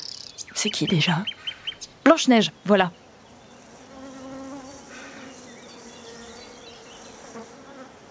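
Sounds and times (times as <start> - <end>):
faint outdoor ambience: 0.0 - 8.0
speech: 0.6 - 1.4, 2.1 - 3.0
bees buzzing around flowers: 3.5 - 8.0.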